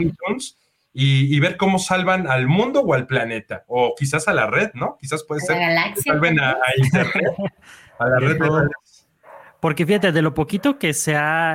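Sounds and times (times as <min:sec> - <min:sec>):
speech: 0:00.0 - 0:08.9, 0:09.6 - 0:11.5
laughter: 0:06.0 - 0:08.7
dog barking: 0:09.2 - 0:10.9.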